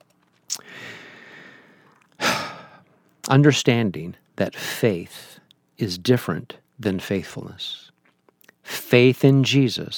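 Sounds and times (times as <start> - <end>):
quick breath intake by someone who has been talking fast: 0.6 - 2.8
speech: 3.3 - 7.9, 8.7 - 9.9.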